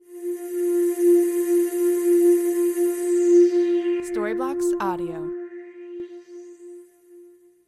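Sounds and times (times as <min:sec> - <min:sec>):
ambient house pad: 0:00.0 - 0:07.6.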